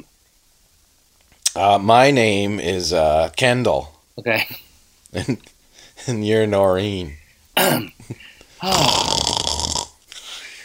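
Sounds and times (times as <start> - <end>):
speech: 1.6 - 9.3
person snoring loudly while asleep: 8.6 - 10.0.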